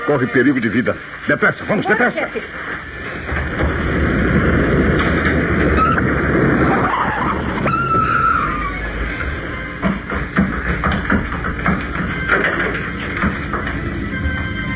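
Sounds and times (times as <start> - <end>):
speech: 0.0 - 2.9
car engine roaring: 2.4 - 14.7
car tires screeching while skidding to a stop: 2.9 - 14.7.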